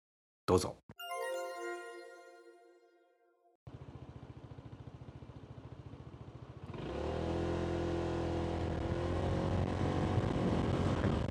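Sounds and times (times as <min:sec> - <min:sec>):
speech: 0:00.5 - 0:01.0
short descending chime: 0:01.0 - 0:03.2
motorcycle engine revving while riding at night in Okinawa Prefecture, Japan: 0:05.9 - 0:11.2.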